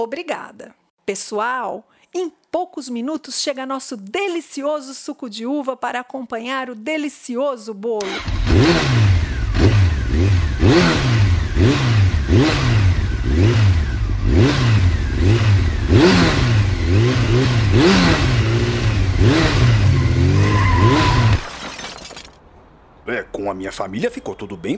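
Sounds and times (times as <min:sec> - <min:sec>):
speech: 0:00.0 - 0:09.0, 0:23.1 - 0:24.7
car engine revving hard: 0:08.2 - 0:21.4
car braking hard: 0:18.1 - 0:21.6.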